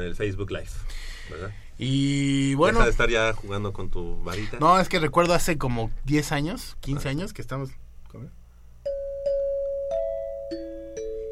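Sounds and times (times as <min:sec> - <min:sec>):
speech: 0:00.0 - 0:08.4
xylophone notes being struck: 0:08.9 - 0:11.3.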